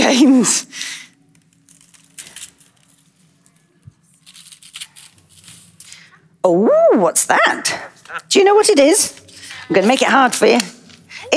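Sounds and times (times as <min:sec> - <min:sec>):
speech: 0:00.1 - 0:01.0, 0:06.4 - 0:11.3
wrapping paper torn off a parcel: 0:01.5 - 0:06.0.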